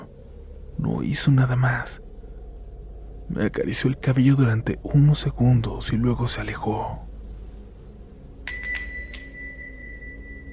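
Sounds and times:
quiet low hum: 0:00.0 - 0:10.5
speech: 0:00.8 - 0:02.0, 0:03.3 - 0:07.1
small metallic door bell ringing: 0:08.5 - 0:10.5.

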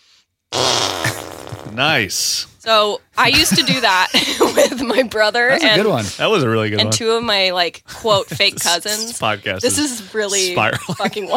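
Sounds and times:
fake fart noise made by hand: 0:00.5 - 0:02.1
speech: 0:01.7 - 0:11.3
laughter: 0:03.2 - 0:07.0, 0:07.9 - 0:11.3.

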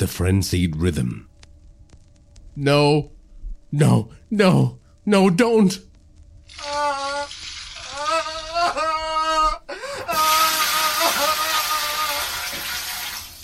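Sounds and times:
speech: 0:00.0 - 0:01.3, 0:02.6 - 0:03.1, 0:03.7 - 0:05.9
person crying out with strained vocal cries: 0:06.5 - 0:12.8
water pouring from a bucket onto a person: 0:07.3 - 0:07.9, 0:10.2 - 0:13.4.

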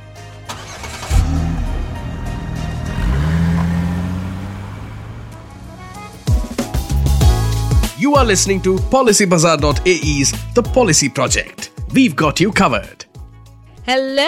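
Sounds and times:
car starting and driving off: 0:00.4 - 0:07.7
speech: 0:08.1 - 0:13.0, 0:13.9 - 0:14.2.

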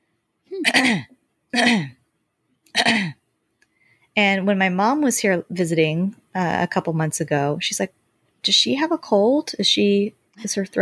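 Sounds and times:
woman clearing her throat as a habitual tic: 0:00.5 - 0:02.0, 0:02.7 - 0:03.2
speech: 0:00.6 - 0:02.0, 0:04.2 - 0:10.8.

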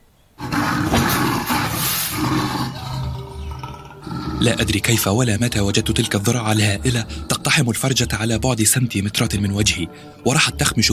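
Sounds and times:
enraged lioness roaring: 0:00.4 - 0:07.8
speech: 0:04.4 - 0:10.9.

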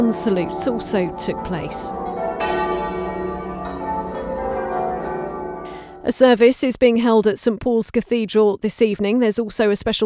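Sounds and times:
speech: 0:00.0 - 0:02.1, 0:06.1 - 0:10.0
church bells ringing in overlapping peals: 0:00.0 - 0:06.4.

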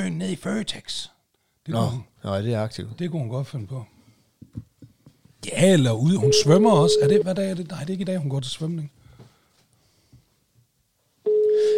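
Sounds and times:
speech: 0:00.0 - 0:03.9, 0:05.4 - 0:09.0
faint noise: 0:00.0 - 0:11.7
electronic telephone ringback tone during an outgoing call: 0:06.2 - 0:07.2, 0:11.3 - 0:11.7.

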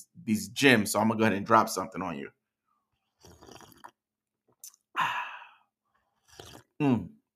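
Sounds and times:
speech: 0:00.0 - 0:02.4, 0:06.8 - 0:07.2
slurping sip of hot coffee with sweet oat milk creamer: 0:03.0 - 0:04.8, 0:06.0 - 0:06.8
brief satisfied voiced exhale: 0:05.0 - 0:06.7.

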